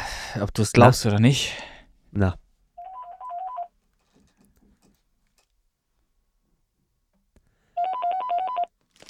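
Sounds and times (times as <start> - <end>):
speech: 0.4 - 2.4
telephone ringing with rapid trilling electronic tones: 2.8 - 3.7, 7.8 - 8.7.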